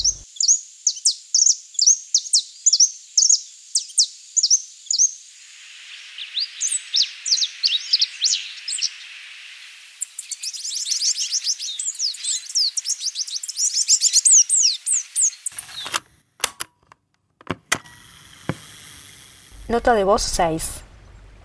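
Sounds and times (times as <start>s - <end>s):
small group of colourful cage-bird songbirds chirping: 0.0s - 5.2s, 6.0s - 16.0s
sharp clicks: 15.4s - 19.8s
speech: 19.7s - 20.8s.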